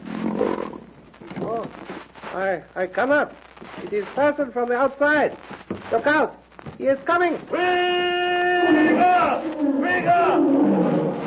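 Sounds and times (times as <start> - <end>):
lion roaring with a deep rumbling growl: 0.0 - 0.8, 8.6 - 11.2
speech: 2.3 - 10.8.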